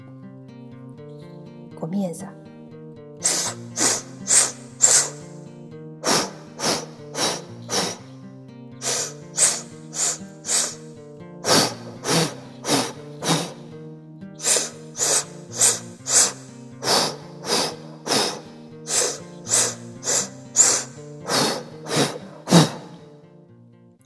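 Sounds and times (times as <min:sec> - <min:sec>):
speech: 0:01.8 - 0:02.4
forceful rhythmic breathing during an active body breathing exercise: 0:03.2 - 0:08.2, 0:08.8 - 0:13.8, 0:14.4 - 0:23.2.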